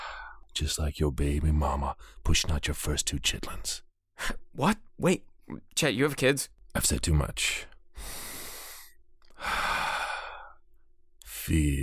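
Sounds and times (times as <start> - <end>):
deep breath in and out: 0.0 - 0.5, 8.0 - 10.8
speech: 0.6 - 8.2, 11.4 - 11.8.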